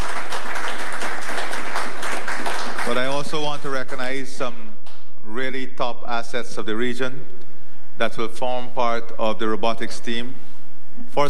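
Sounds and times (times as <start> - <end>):
audience applause at a public address honouring local doctors: 0.0 - 4.2
speech: 2.9 - 7.4, 8.0 - 10.4, 11.0 - 11.2.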